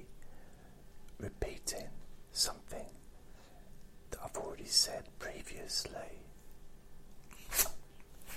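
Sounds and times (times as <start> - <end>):
speech: 1.2 - 2.6, 4.7 - 6.3
ferret sneezing: 7.3 - 8.3.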